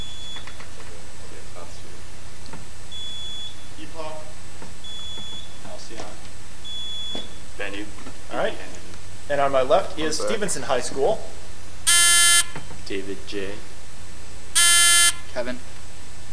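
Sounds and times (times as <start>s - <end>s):
quiz buzzers ringing in with short high electronic beeps: 0.0s - 0.6s, 2.9s - 7.6s, 11.8s - 12.7s, 14.5s - 15.4s
speech: 9.5s - 11.4s, 12.9s - 13.7s, 15.4s - 15.7s.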